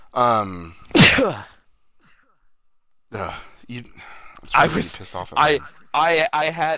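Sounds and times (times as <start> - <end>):
speech: 0.2 - 1.6, 3.1 - 6.7
person sneezing: 0.9 - 1.5.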